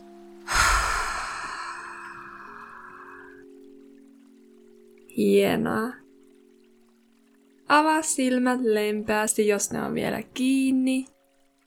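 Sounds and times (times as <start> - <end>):
soft steady drone: 0.0 - 11.6
deep breath exhaled through mouth: 0.5 - 3.4
speech: 5.2 - 6.0, 7.7 - 11.1.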